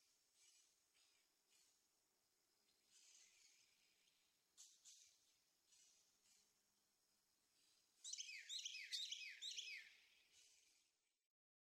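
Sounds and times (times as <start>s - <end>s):
Carolina wren singing: 8.0s - 10.0s.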